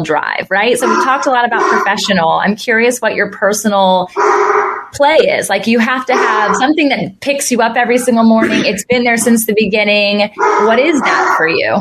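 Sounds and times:
speech: 0.0 - 11.7
big mastiff dog barking and yipping: 0.8 - 2.1, 4.1 - 5.0, 6.0 - 6.8, 10.3 - 11.7.

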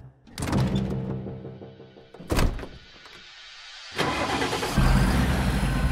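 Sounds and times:
heavy door thudding shut: 2.2 - 2.9
delivery truck engine starting and pulling away: 3.8 - 5.8.

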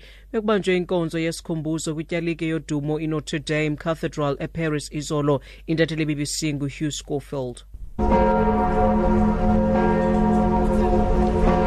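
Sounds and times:
speech: 0.3 - 9.3
deep bells of Notre Dame Cathedral in Paris tolling for a memorial service: 8.0 - 11.6.

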